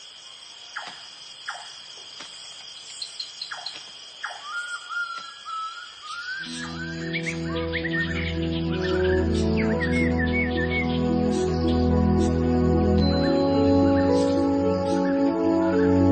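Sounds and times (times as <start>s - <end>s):
tropical rainforest birds chirping and whistling: 3.0s - 16.1s
dense steady low drone of forest ambience: 6.4s - 16.1s.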